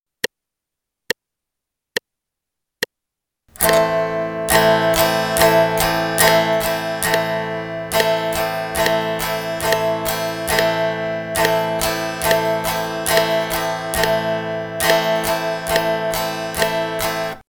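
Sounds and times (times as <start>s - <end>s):
guitar strumming an A minor chord in eighth notes: 3.5s - 17.4s.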